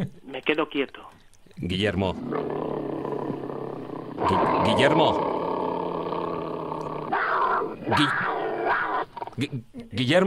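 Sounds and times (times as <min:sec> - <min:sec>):
speech: 0:00.0 - 0:02.7, 0:04.2 - 0:05.4, 0:07.9 - 0:08.3, 0:09.4 - 0:10.2
lion roaring: 0:02.1 - 0:09.5.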